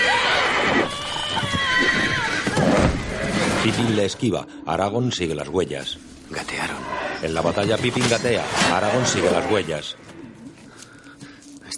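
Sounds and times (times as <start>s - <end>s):
horse neighing in a film battle scene: 0.0s - 3.7s
speech: 3.6s - 10.1s.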